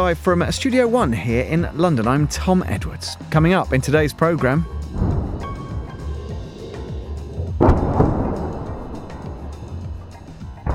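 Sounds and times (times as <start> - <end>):
speech: 0.1 - 5.0
deep booming explosion: 4.6 - 10.7
steady low rumble: 4.6 - 10.7
thuds: 4.8 - 10.7.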